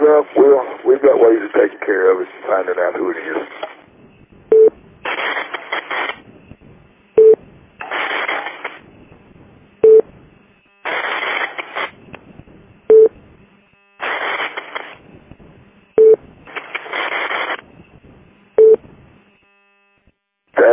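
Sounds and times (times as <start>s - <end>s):
harsh bursts of radio static or data noise: 0.0s - 19.9s, 20.6s - 20.7s
speech: 0.2s - 3.7s
rapid electronic beeping tones over radio: 4.5s - 4.8s.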